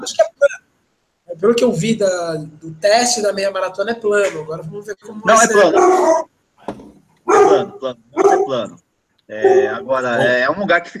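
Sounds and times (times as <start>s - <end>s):
speech: 0.0s - 0.4s, 1.4s - 6.3s, 7.6s - 10.9s
dog barking: 5.6s - 6.3s, 7.2s - 8.7s, 9.4s - 9.8s.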